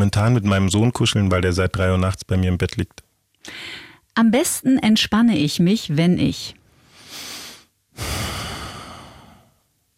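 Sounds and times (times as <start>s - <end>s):
speech: 0.0s - 7.3s
deep breathing: 6.7s - 9.7s.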